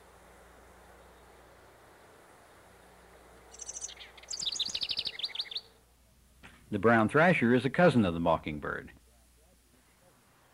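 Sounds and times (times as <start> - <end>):
house wren singing with a rapid gurgling trill: 0.0 - 5.9
speech: 6.7 - 9.0.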